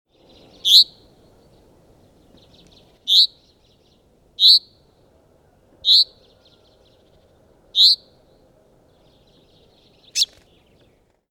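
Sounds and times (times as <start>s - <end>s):
common chaffinch Fringilla coelebs calling: 0.5s - 1.0s, 2.4s - 4.8s, 5.8s - 6.6s, 7.8s - 8.1s, 10.0s - 10.4s.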